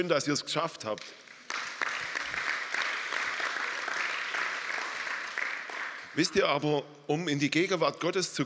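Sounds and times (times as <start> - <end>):
speech: 0.0 - 1.7, 6.2 - 8.4
audience applause at a church service: 1.4 - 6.2.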